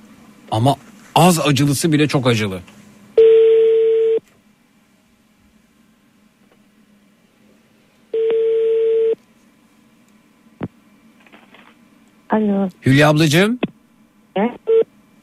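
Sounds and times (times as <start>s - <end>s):
faint hum: 0.0s - 15.2s
speech: 0.5s - 2.8s, 12.4s - 13.6s, 14.4s - 14.6s
telephone ringback tone: 3.2s - 4.2s, 8.2s - 9.2s.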